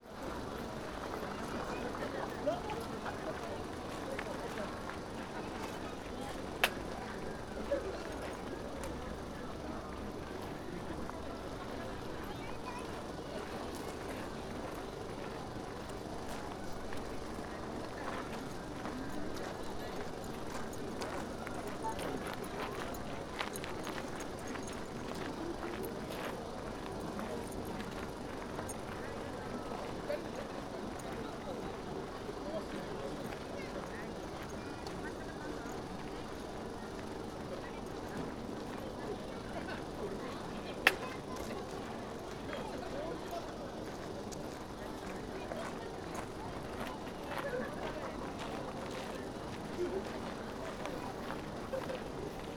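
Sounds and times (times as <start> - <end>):
parking area ambience in front of Gokoku Shrine: 0.1 - 52.5.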